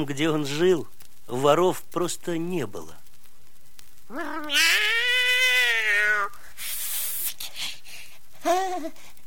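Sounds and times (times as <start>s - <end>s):
speech: 0.0s - 3.0s, 4.1s - 5.0s, 8.4s - 9.1s
cat meowing: 4.1s - 6.4s.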